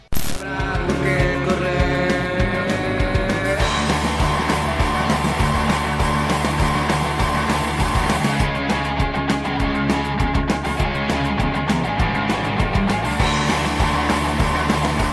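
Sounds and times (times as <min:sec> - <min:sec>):
indie rock song with driving beat, thick bass and layered guitars: 0:00.1 - 0:15.1.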